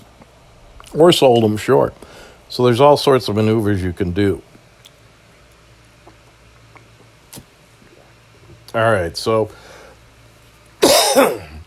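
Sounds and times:
low room hum: 0:00.0 - 0:11.6
speech: 0:00.9 - 0:04.5, 0:08.7 - 0:09.7, 0:11.2 - 0:11.4
single loud rough cough: 0:10.8 - 0:11.6.

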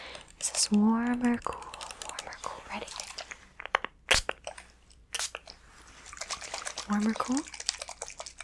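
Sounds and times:
speech: 0:00.6 - 0:01.7, 0:06.9 - 0:07.6
spray bottle spritzing mist onto a person's face: 0:05.1 - 0:05.5.

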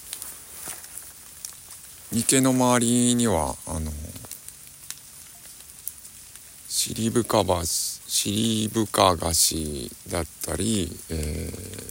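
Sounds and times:
raindrops pattering onto pond water: 0:00.0 - 0:11.8
speech: 0:02.1 - 0:04.0, 0:06.8 - 0:11.8.

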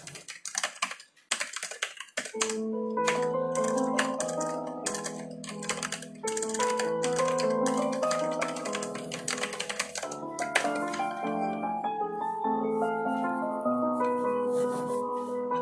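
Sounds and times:
keyboard typing: 0:00.0 - 0:11.6
soft piano music with gentle sustained chords: 0:01.5 - 0:15.6.

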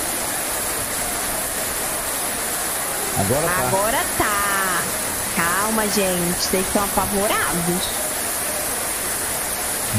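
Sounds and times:
rushing floodwater torrent in the street: 0:00.0 - 0:09.9
speech: 0:03.2 - 0:04.4, 0:05.4 - 0:08.0.

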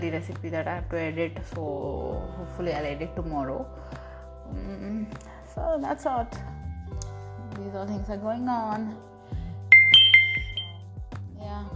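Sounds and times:
speech: 0:00.0 - 0:06.6, 0:07.6 - 0:09.1
phone message notification chime: 0:09.7 - 0:10.7.

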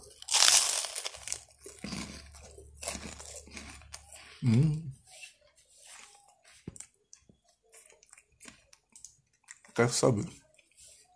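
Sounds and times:
crunchy food being eaten: 0:00.0 - 0:11.1
speech: 0:04.4 - 0:04.9, 0:09.8 - 0:10.4.

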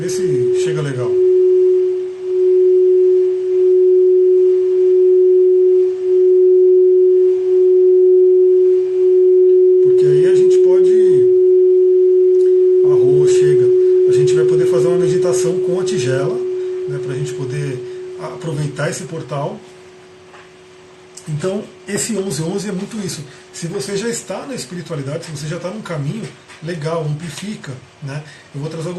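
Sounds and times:
speech: 0:00.0 - 0:01.3, 0:22.1 - 0:28.9
crystal singing bowl ringing: 0:00.0 - 0:21.0.

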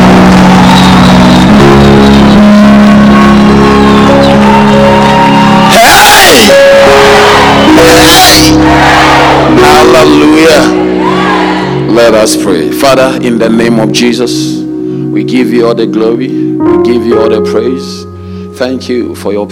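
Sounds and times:
sustained musical drone: 0:00.0 - 0:18.5
church audience shouting and whooping praise: 0:00.2 - 0:01.3, 0:03.4 - 0:11.9
speech: 0:12.2 - 0:14.6, 0:15.2 - 0:18.0, 0:18.6 - 0:19.5.

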